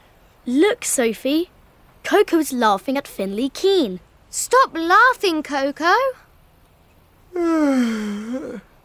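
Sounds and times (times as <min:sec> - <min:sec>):
speech: 0:00.5 - 0:06.2, 0:07.3 - 0:08.7
person yawning: 0:07.3 - 0:08.7.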